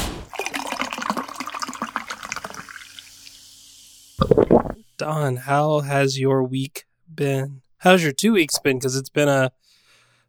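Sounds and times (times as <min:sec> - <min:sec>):
bubbly trickle and fizz of drink: 0:00.3 - 0:03.3, 0:04.2 - 0:04.8
drink pouring into a glass: 0:00.3 - 0:03.3, 0:04.2 - 0:04.8
speech: 0:04.4 - 0:09.6.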